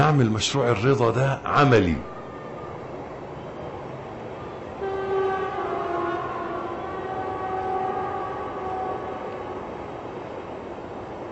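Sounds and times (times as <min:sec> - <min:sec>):
train rumbling past: 0:00.0 - 0:11.3
speech: 0:00.1 - 0:02.2
long drawn-out horn-like tones: 0:04.7 - 0:10.3.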